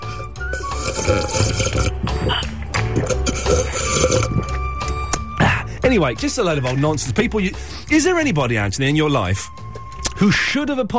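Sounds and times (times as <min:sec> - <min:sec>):
water pouring into a glass: 0:00.5 - 0:02.4, 0:03.0 - 0:04.6
person gulping water: 0:00.6 - 0:04.8
speech: 0:01.1 - 0:01.9, 0:06.0 - 0:09.6, 0:10.2 - 0:10.9.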